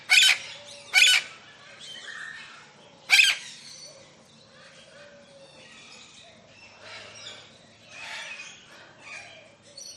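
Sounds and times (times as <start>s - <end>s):
lilac-crowned amazon parrot giving loud grating squawks: 0.0s - 1.3s, 3.1s - 3.4s
parrots chattering and calling: 0.0s - 9.9s.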